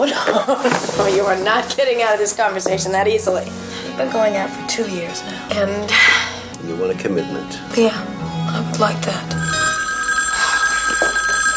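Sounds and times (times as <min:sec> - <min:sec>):
speech: 0:00.0 - 0:08.2, 0:08.8 - 0:09.4
telephone bell ringing: 0:09.3 - 0:11.5.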